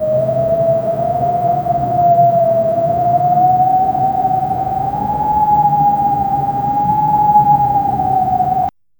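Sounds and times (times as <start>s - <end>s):
wind whistling through a canyon: 0.0s - 8.7s.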